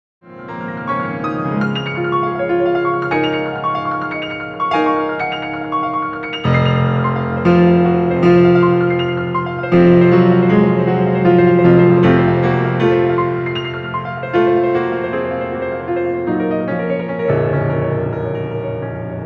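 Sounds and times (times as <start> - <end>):
piano accordion playing: 0.3 - 19.2.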